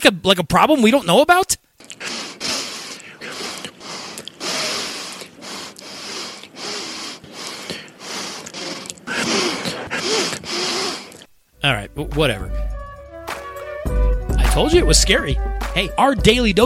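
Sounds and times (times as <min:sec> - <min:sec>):
speech: 0:00.0 - 0:02.3, 0:11.6 - 0:12.7, 0:14.6 - 0:16.6
loud nasal sniffing: 0:01.8 - 0:11.3.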